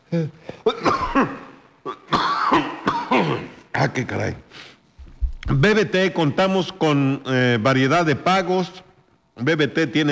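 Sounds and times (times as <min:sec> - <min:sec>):
speech: 0:00.1 - 0:01.4, 0:03.9 - 0:04.7, 0:05.5 - 0:08.8, 0:09.4 - 0:10.0
raspy throaty coughing fit: 0:00.1 - 0:03.6.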